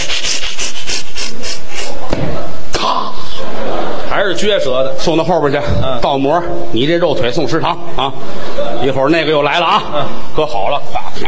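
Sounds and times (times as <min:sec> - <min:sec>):
voice imitating a saw cutting through a leg: 0:00.0 - 0:02.2
laughter: 0:03.2 - 0:04.4, 0:08.0 - 0:11.2
speech: 0:04.4 - 0:11.2.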